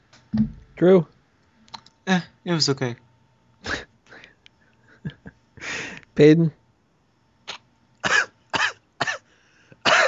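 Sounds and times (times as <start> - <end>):
speech: 0.2 - 1.1, 2.1 - 3.0, 3.6 - 3.9, 6.2 - 6.6
man coughing from something caught in his throat: 8.0 - 10.0.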